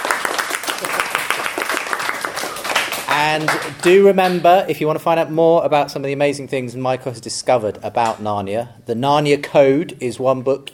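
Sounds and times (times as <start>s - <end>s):
crowd applauding: 0.0s - 4.4s
speech: 3.2s - 10.7s.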